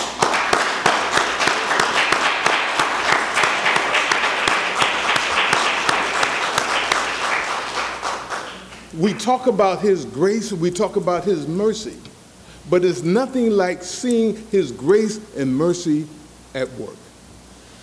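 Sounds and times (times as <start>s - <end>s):
large group clapping heartily indoors: 0.0s - 9.4s
speech: 9.0s - 12.1s, 12.7s - 17.0s.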